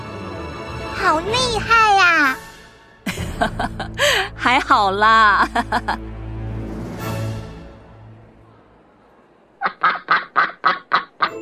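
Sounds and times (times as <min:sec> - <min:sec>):
speech: 0:01.0 - 0:02.4, 0:03.4 - 0:06.1
laughter: 0:03.1 - 0:04.0, 0:05.3 - 0:06.0
duck quacking: 0:09.6 - 0:11.4.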